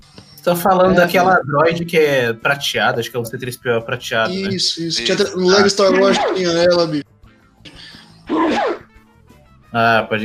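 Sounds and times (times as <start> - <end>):
speech: 0.4 - 7.1, 8.3 - 8.8, 9.7 - 10.2
sneeze: 8.3 - 8.8.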